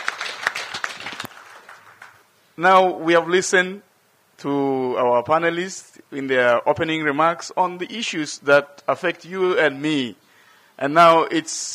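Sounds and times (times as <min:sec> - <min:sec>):
audience applause for panelists at a panel discussion: 0:00.0 - 0:02.2
speech: 0:02.6 - 0:10.2, 0:10.8 - 0:11.7.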